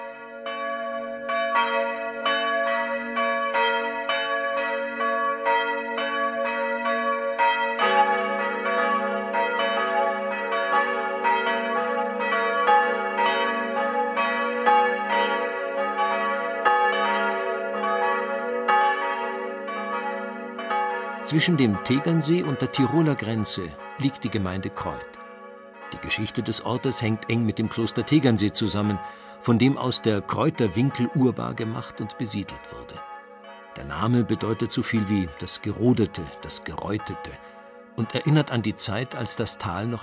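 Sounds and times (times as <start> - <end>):
parish church bells ringing the noon peal in Upper Bavaria Germany: 0.0 - 40.0
speech: 1.6 - 2.0, 21.3 - 25.2, 26.0 - 33.1, 33.8 - 40.0.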